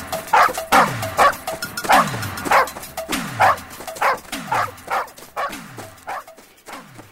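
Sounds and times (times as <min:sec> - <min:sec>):
dog barking: 0:00.3 - 0:07.0.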